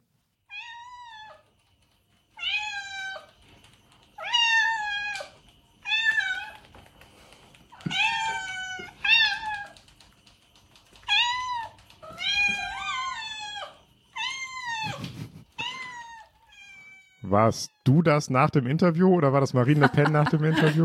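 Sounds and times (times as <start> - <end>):
cat meowing: 0.5 - 1.4, 2.4 - 3.3, 4.2 - 6.7, 7.8 - 9.8, 11.1 - 15.0, 15.6 - 17.9
speech: 17.3 - 20.8
laughter: 19.5 - 20.8.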